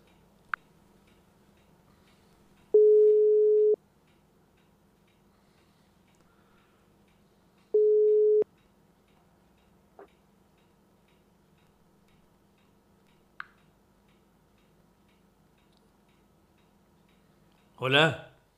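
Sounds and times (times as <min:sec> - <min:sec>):
phone call ringback tone: 0:02.8 - 0:03.8, 0:07.8 - 0:08.4
speech: 0:17.8 - 0:18.2.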